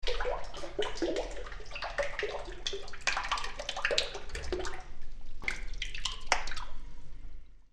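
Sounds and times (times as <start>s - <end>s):
water dripping in a cave: 0.0s - 7.6s.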